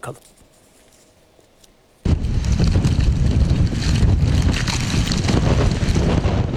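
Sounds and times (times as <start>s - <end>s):
strong storm wind roaring: 2.1s - 6.5s.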